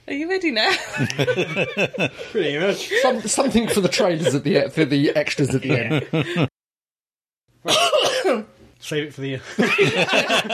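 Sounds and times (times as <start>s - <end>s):
speech: 0.1s - 6.5s, 7.6s - 10.5s
laughter: 0.7s - 6.6s, 9.4s - 10.5s
harsh raspy cough: 7.6s - 8.5s.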